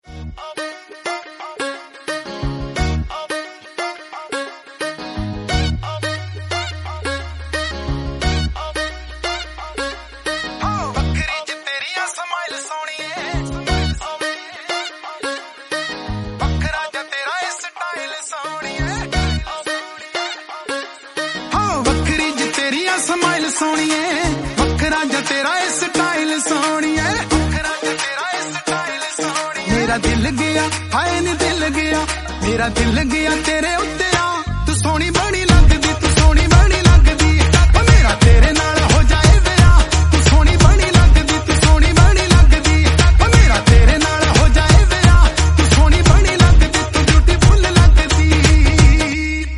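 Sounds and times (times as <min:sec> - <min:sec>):
Punjabi romantic music: 0:00.0 - 0:49.5.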